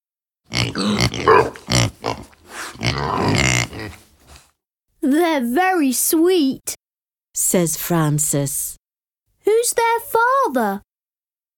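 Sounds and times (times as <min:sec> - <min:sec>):
pig grunting and snorting: 0:00.5 - 0:04.5
speech: 0:05.1 - 0:06.8, 0:07.4 - 0:08.8, 0:09.5 - 0:10.9.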